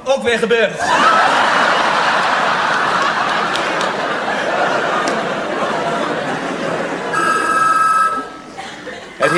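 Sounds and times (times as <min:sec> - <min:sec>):
speech: 0:00.3 - 0:01.2
people chuckling: 0:00.8 - 0:09.3
noisy crowd murmur: 0:00.9 - 0:09.3
telephone bell ringing: 0:07.1 - 0:08.4.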